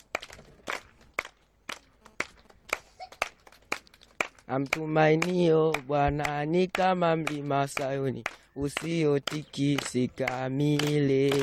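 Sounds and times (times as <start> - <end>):
church congregation clapping hands: 0.0 - 11.4
speech: 4.5 - 11.4.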